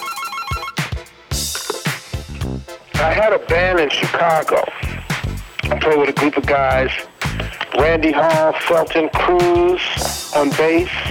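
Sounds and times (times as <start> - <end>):
telephone ringing with electronic warbling ringtone: 0.0 - 0.9
punchy percussive thumps: 0.6 - 8.6, 9.2 - 11.0
speech: 3.0 - 4.9, 5.8 - 7.1, 7.8 - 11.0.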